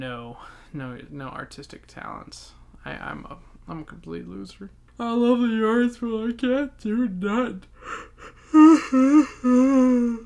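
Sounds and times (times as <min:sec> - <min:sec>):
speech: 0:00.0 - 0:10.2
drawn-out yawning vocal moan: 0:07.8 - 0:10.2.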